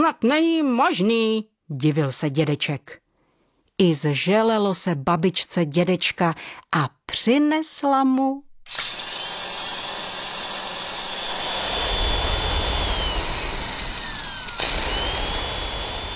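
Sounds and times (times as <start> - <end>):
speech: 0.0 - 3.0, 3.8 - 9.0
electric kitchen mixer whirring: 8.7 - 16.1.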